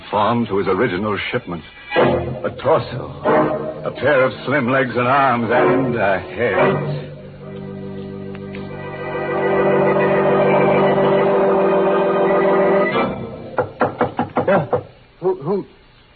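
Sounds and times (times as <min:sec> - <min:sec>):
speech: 0:00.1 - 0:07.1
sustained ringing musical drone: 0:02.0 - 0:13.6
girl knocking on an alley door in the rain: 0:13.6 - 0:14.9.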